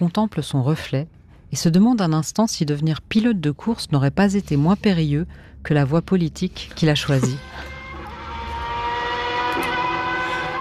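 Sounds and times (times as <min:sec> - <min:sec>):
speech: 0:00.0 - 0:07.7
piston racing engine running: 0:07.1 - 0:10.5.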